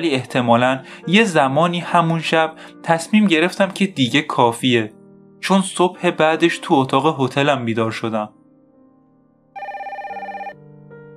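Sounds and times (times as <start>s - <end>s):
speech: 0.0s - 8.4s
telephone ringing: 9.6s - 10.6s.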